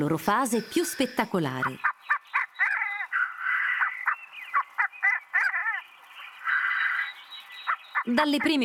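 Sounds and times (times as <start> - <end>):
speech: 0.0 - 1.9, 8.0 - 8.6
black grouse males calling at a lek: 0.5 - 8.6.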